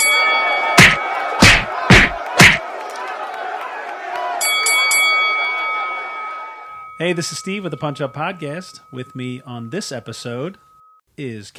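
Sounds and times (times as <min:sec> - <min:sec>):
faint high chimes: 0:00.0 - 0:01.4, 0:04.4 - 0:11.0
bell clanging: 0:00.0 - 0:01.6, 0:04.4 - 0:11.0
crowd murmuring: 0:00.3 - 0:04.4
speech: 0:07.0 - 0:11.5.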